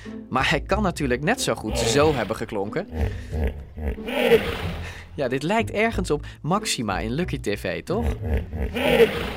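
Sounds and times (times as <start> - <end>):
speech: 0.0 - 9.3
hippopotamus bellowing with grunting honks and rasping roar: 1.7 - 5.0, 8.0 - 9.3.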